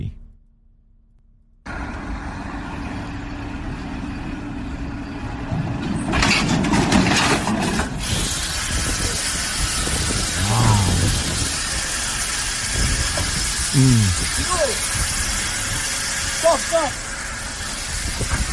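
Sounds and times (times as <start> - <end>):
truck engine starting up and idling: 0.0 - 18.5
hissing burst: 8.0 - 18.5.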